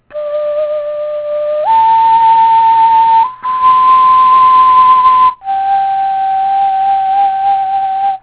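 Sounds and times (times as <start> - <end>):
baby flute: 0.0 - 8.2.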